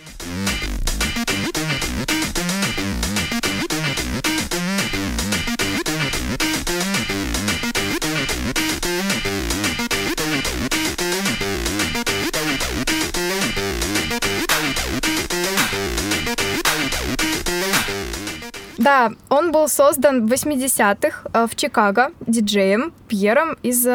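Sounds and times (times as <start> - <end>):
Roland TB-303 acid bass synthesizer line: 0.0 - 18.7
speech: 19.0 - 23.9.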